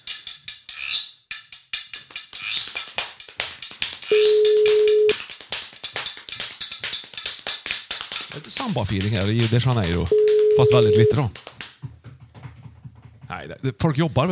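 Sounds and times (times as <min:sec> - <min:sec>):
quick tapping and clicking noises: 0:01.6 - 0:13.4
phone ringback tone of an outgoing call: 0:04.1 - 0:05.1, 0:10.1 - 0:11.2
speech: 0:08.6 - 0:11.4, 0:13.4 - 0:14.3.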